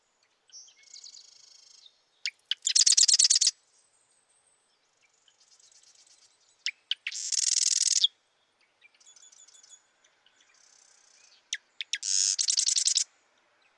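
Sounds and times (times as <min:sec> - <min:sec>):
marsh wren song: 0:00.8 - 0:03.5, 0:06.6 - 0:08.1, 0:10.6 - 0:13.1.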